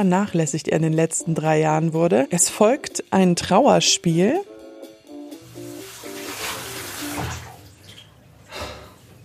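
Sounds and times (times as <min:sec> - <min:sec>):
speech: 0:00.0 - 0:04.5
tap water running and splashing while rinsing a vacuum cleaner filter: 0:05.4 - 0:08.2.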